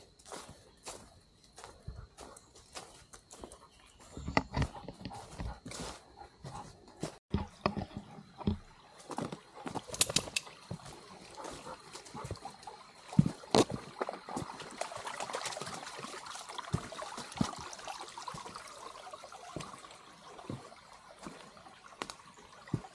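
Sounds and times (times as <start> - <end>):
small stream trickling at a trail crossing: 0.0 - 22.9
water splashes or clicks: 10.4 - 22.9.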